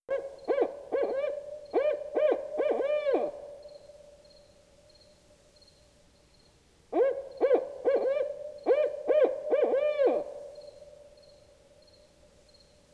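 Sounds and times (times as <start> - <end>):
owl hooting: 0.1 - 3.4, 7.0 - 10.4
crickets chirping: 10.6 - 12.8.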